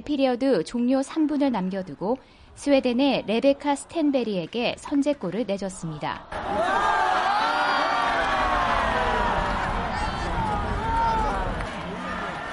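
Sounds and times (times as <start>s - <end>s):
speech: 0.0s - 7.0s
arena crowd chanting encouragement at ice hockey game: 6.3s - 12.5s.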